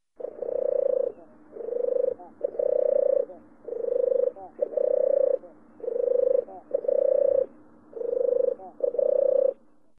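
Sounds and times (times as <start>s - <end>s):
European turtle dove calling: 0.0s - 9.8s.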